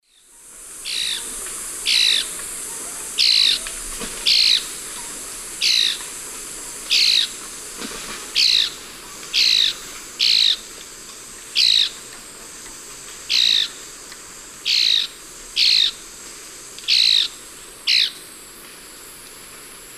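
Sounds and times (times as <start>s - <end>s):
Pithys albifrons calls in South American eastern lowlands: 0.9s - 6.1s, 8.4s - 10.6s, 11.6s - 12.0s, 13.3s - 13.8s, 14.7s - 16.0s, 16.9s - 18.2s.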